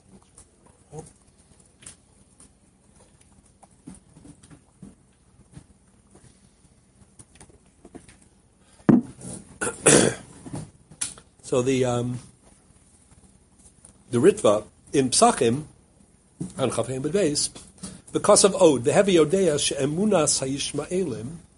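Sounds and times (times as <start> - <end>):
speech: 0.9 - 1.2, 11.5 - 12.3, 14.1 - 15.7, 16.4 - 21.5
person coughing: 9.6 - 10.3.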